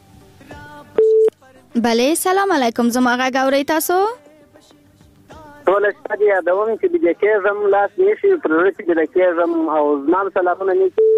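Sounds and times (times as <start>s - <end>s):
steady pure telephone tone while a call is placed: 1.0s - 1.3s, 11.0s - 11.1s
speech: 1.8s - 4.2s, 5.7s - 11.1s.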